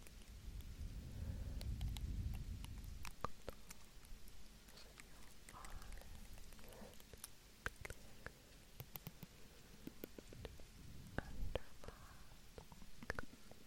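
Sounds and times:
soft unintelligible whispering: 0.9s - 13.6s
sharp little clicks: 1.5s - 12.0s.

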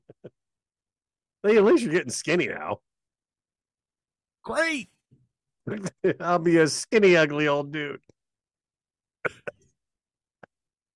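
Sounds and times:
speech: 1.4s - 2.9s, 4.4s - 4.9s, 5.7s - 8.1s, 9.2s - 9.4s
muffled cough: 9.2s - 9.6s.

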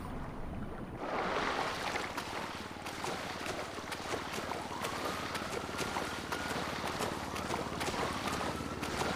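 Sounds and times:
steady loud rush of churning water: 0.0s - 9.1s
video game character diving into water splash: 1.0s - 9.1s.

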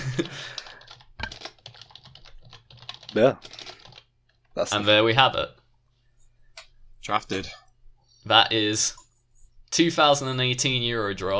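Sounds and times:
typing on a computer keyboard: 0.1s - 4.5s
speech: 0.2s - 0.6s, 3.1s - 3.6s, 4.6s - 5.6s, 7.1s - 7.6s, 8.2s - 9.0s, 9.7s - 11.3s.

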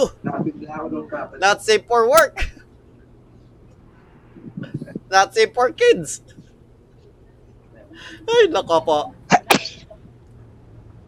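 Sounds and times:
speech: 0.0s - 0.4s, 1.0s - 2.5s, 5.1s - 6.4s, 8.0s - 9.8s
sneeze: 9.3s - 9.9s.

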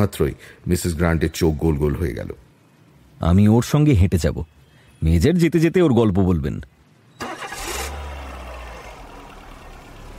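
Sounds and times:
speech: 0.0s - 2.4s, 3.2s - 6.7s
car engine starting and running: 7.2s - 10.1s.

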